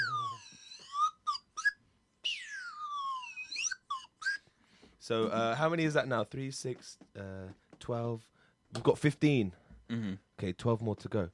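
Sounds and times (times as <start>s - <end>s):
slide whistle: 0.0s - 4.4s
speech: 5.1s - 11.3s.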